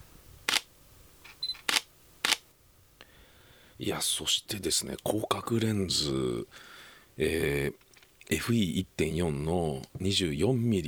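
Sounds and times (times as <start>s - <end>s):
mirrorless camera whirring: 0.4s - 2.4s
light mirrorless camera shutter clicking: 1.3s - 2.4s
speech: 3.8s - 10.8s.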